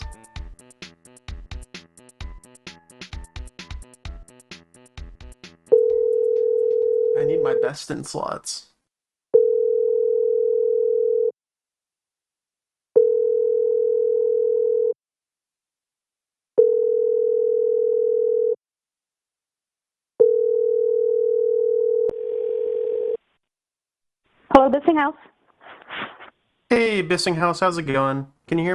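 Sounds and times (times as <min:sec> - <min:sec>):
ringback tone of a telephone call being placed: 0:05.7 - 0:07.6, 0:09.4 - 0:11.3, 0:13.0 - 0:15.0, 0:16.6 - 0:18.6, 0:20.2 - 0:23.2
speech: 0:07.5 - 0:08.7, 0:24.8 - 0:25.4, 0:26.7 - 0:28.7.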